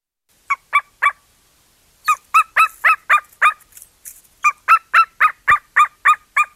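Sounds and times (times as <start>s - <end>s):
golden eagle giving high yelping calls: 0.4s - 1.3s, 2.0s - 3.7s, 4.4s - 6.5s.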